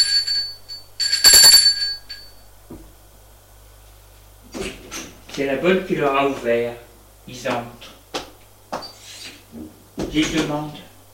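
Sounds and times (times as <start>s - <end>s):
doorbell ringing at an apartment door: 0.0s - 2.5s
speech: 5.4s - 7.9s, 10.1s - 10.8s.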